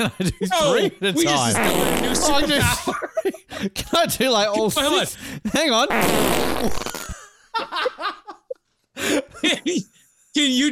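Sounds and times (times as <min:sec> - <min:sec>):
bursts of laughter: 0:00.0 - 0:04.9, 0:07.0 - 0:10.0
speech: 0:00.0 - 0:07.0, 0:09.0 - 0:10.6
several layered fart sound effects: 0:01.6 - 0:02.6, 0:05.9 - 0:07.2.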